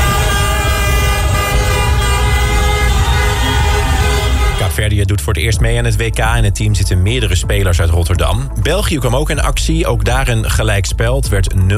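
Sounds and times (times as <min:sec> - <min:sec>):
car horns honking in celebration: 0:00.0 - 0:04.8
low traffic rumble: 0:00.0 - 0:04.9
speech: 0:05.3 - 0:11.7.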